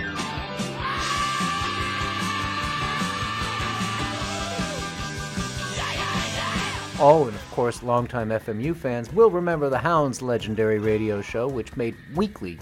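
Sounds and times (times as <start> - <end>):
rock singer letting out a raw strained screech: 0.0 - 7.4
distorted guitars: 0.0 - 11.6
steady rock drums: 0.0 - 12.5
speech: 7.0 - 12.5.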